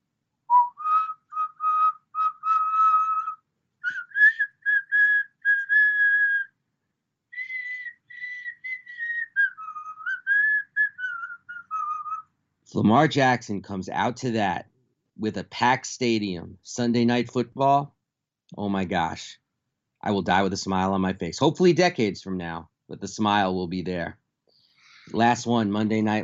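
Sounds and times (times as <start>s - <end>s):
person whistling a short melodic tune by mouth imitating a character's whistle: 0.5s - 6.6s, 7.4s - 12.3s
speech: 12.8s - 19.4s, 20.0s - 24.2s, 25.1s - 26.2s.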